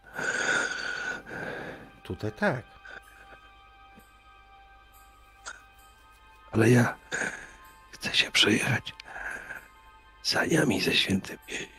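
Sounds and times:
labored wheezing breathing: 0:00.0 - 0:02.0, 0:02.7 - 0:03.8, 0:05.4 - 0:06.2, 0:06.9 - 0:07.9, 0:09.0 - 0:10.1
speech: 0:02.1 - 0:02.8, 0:06.6 - 0:07.3, 0:08.1 - 0:09.0, 0:10.3 - 0:11.7.

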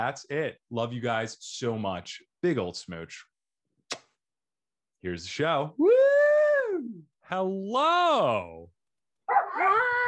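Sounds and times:
speech: 0:00.0 - 0:03.3, 0:05.0 - 0:06.1, 0:06.9 - 0:10.0
dog barking: 0:09.3 - 0:10.0.

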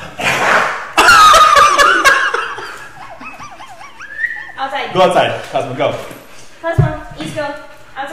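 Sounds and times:
laughter: 0:01.0 - 0:04.7
dogs yipping: 0:03.2 - 0:04.6
speech: 0:04.9 - 0:08.1.

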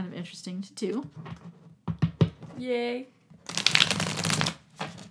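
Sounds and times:
speech: 0:00.2 - 0:01.6, 0:02.6 - 0:04.0
tarot card deck shuffling: 0:03.5 - 0:05.0.

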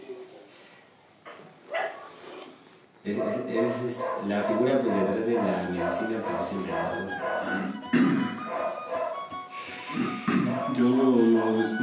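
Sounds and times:
faint noise: 0:00.0 - 0:11.8
small dogs barking: 0:01.7 - 0:02.2, 0:03.1 - 0:09.3, 0:10.3 - 0:11.0
speech: 0:03.0 - 0:08.3, 0:10.8 - 0:11.8.

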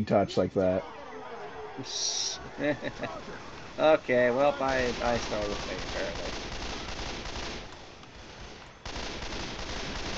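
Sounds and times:
speech: 0:00.0 - 0:01.0, 0:01.8 - 0:06.5
laughter: 0:00.8 - 0:06.1
rapid video game gunfire: 0:03.0 - 0:10.1.

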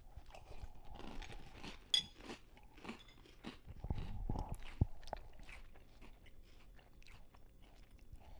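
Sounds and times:
people crunching and chewing a chocolate-flavoured cereal snack: 0:00.1 - 0:08.3.

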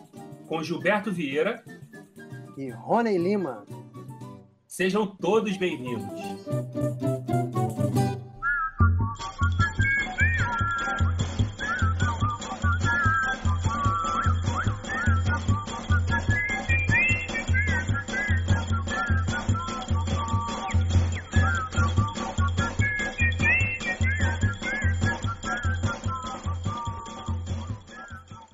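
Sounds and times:
instrumental Brazilian music with whistled melody: 0:00.0 - 0:28.5
speech: 0:00.5 - 0:01.7, 0:02.6 - 0:03.8, 0:04.8 - 0:07.4.

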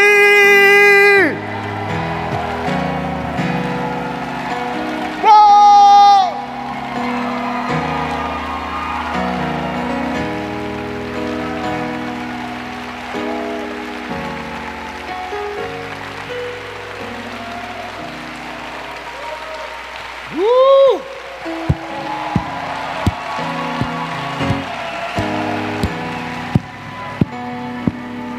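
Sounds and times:
people shouting: 0:00.0 - 0:10.6, 0:17.4 - 0:28.3
audience clapping: 0:00.0 - 0:28.3
music: 0:00.0 - 0:28.3.

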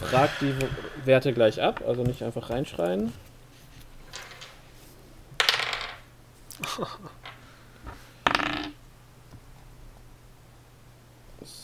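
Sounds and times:
speech: 0:00.0 - 0:03.3, 0:06.7 - 0:07.2
dice tumbling and rattling onto a table: 0:05.4 - 0:06.1, 0:08.2 - 0:08.8.

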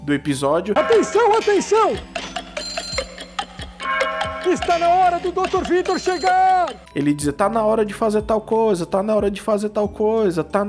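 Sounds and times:
speech: 0:00.0 - 0:02.2, 0:04.5 - 0:10.6
clock alarm ringing with bright metallic strikes: 0:00.8 - 0:06.9.

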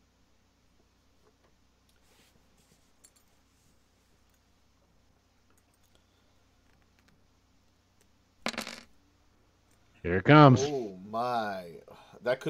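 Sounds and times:
dice rolled clattering across a surface: 0:08.4 - 0:08.9
speech: 0:10.0 - 0:12.4.

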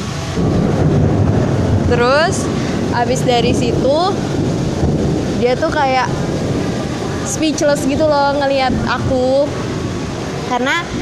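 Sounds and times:
deep rumbling roll of thunder: 0:00.0 - 0:10.9
faint rain-like hiss: 0:00.0 - 0:10.9
speech: 0:01.9 - 0:04.4, 0:05.4 - 0:06.2, 0:07.3 - 0:09.6, 0:10.5 - 0:10.9.

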